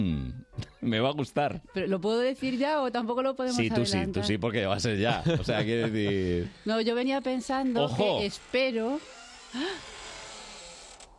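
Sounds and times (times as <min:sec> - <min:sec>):
speech: 0:00.0 - 0:10.0
laughter: 0:04.8 - 0:06.5
studio door creaking on unoiled hinges: 0:05.7 - 0:11.1.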